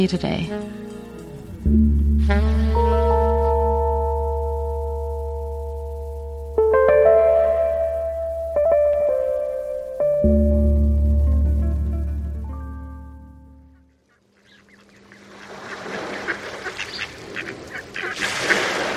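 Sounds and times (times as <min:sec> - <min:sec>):
sustained low tone: 0:00.7 - 0:13.9
migrating mallard ducks quacking: 0:13.6 - 0:18.9.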